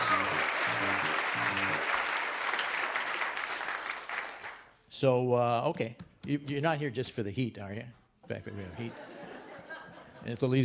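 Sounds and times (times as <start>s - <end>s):
crowd murmur or cheer: 0.0s - 4.6s
audience applause: 0.0s - 4.7s
speech: 5.0s - 9.1s, 10.2s - 10.6s
laughter: 8.3s - 10.5s.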